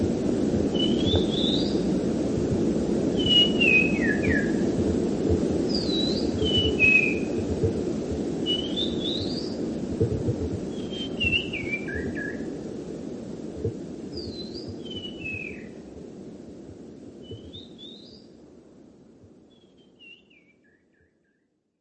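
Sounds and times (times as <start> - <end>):
steady low rumbling noise: 0.0 - 14.9
bird whistling short slurred notes: 0.8 - 1.7, 3.2 - 4.5, 5.7 - 7.3, 8.5 - 9.4, 10.8 - 12.4, 14.2 - 15.7.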